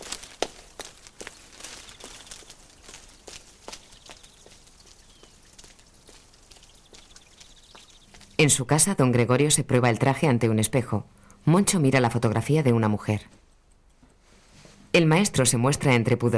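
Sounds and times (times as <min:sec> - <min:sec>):
child's footsteps walking under arcades: 0:00.0 - 0:08.5
speech: 0:08.4 - 0:13.4, 0:15.0 - 0:16.3.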